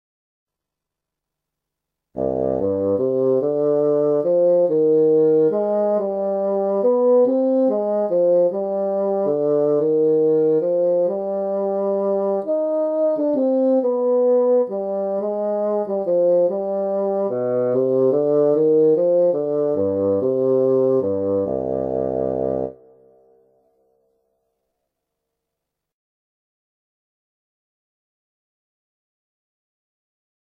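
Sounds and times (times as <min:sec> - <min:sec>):
bassoon: 0:02.2 - 0:23.4.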